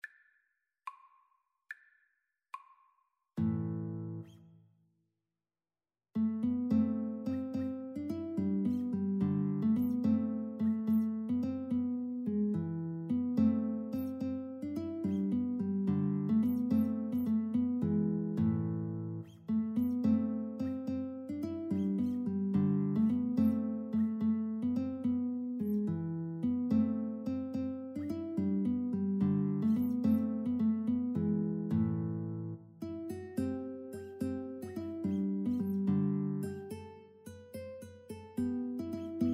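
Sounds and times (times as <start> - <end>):
guitar duet: 3.4 - 4.5, 6.2 - 39.3.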